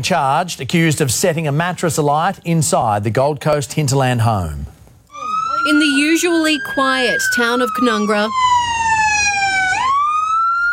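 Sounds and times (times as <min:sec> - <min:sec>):
speech: 0:00.0 - 0:04.8, 0:05.6 - 0:09.0
emergency vehicle siren wailing at a house fire: 0:05.1 - 0:10.7.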